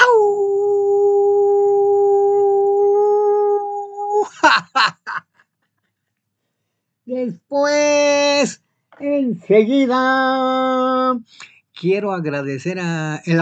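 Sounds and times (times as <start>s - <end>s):
person howling as a greeting to radio listeners: 0.0s - 4.4s
speech: 7.1s - 13.3s.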